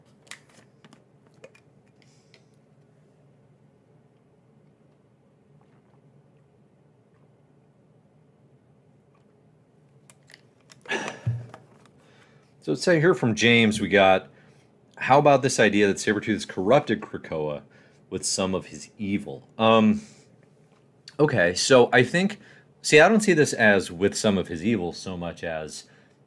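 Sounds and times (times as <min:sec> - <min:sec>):
person sipping and swallowing water: 0:04.2 - 0:07.7, 0:09.0 - 0:09.5
speech: 0:12.7 - 0:14.3, 0:15.0 - 0:20.2, 0:21.2 - 0:25.9.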